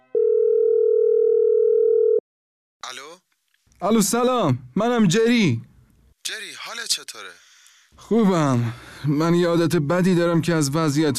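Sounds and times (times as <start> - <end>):
telephone dial tone: 0.2 - 2.2
speech: 3.8 - 5.7, 6.3 - 7.4, 8.0 - 11.1.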